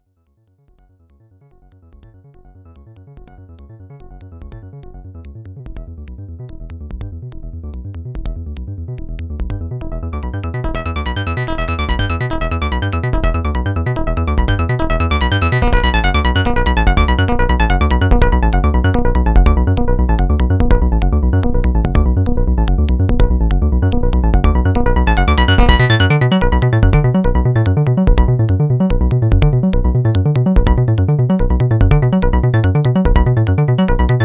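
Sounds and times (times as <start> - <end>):
Pro-One and Monotribe synthesizers playing in sync: 9.6 - 34.2.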